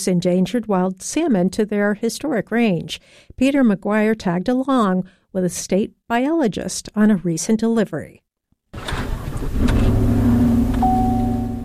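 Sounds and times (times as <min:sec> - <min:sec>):
speech: 0:00.0 - 0:09.8
biologist's pickup truck engine rumbling while towing a trailer out of a parking lot: 0:08.8 - 0:11.6.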